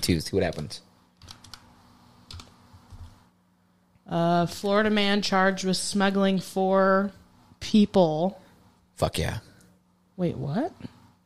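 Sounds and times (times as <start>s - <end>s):
speech: 0.0s - 0.9s, 4.1s - 8.4s, 9.0s - 9.5s, 10.2s - 11.0s
keystrokes on a computer keyboard: 1.2s - 1.7s, 2.3s - 3.1s.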